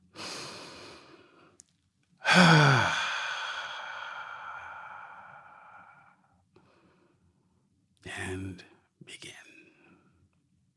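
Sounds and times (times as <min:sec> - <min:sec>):
deep breathing with a long sighing exhale: 0:00.1 - 0:01.5, 0:02.2 - 0:07.2
speech: 0:02.4 - 0:02.9.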